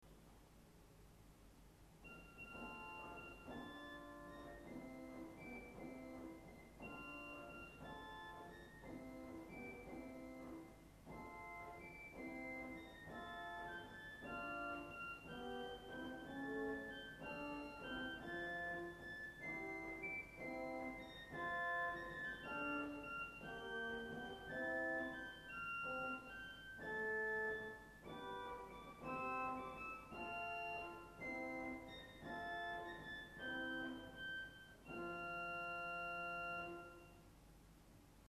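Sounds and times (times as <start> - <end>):
Dolce organ stop playing: 2.0 - 37.2.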